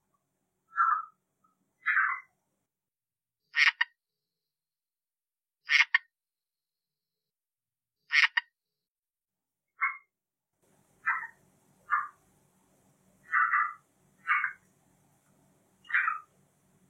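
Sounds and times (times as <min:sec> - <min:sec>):
red-eyed tree frog giving clucking chocks: 0:00.7 - 0:01.2, 0:01.8 - 0:02.3, 0:03.5 - 0:04.0, 0:05.7 - 0:06.1, 0:08.1 - 0:08.5, 0:11.0 - 0:12.2, 0:13.2 - 0:14.7, 0:15.8 - 0:16.3.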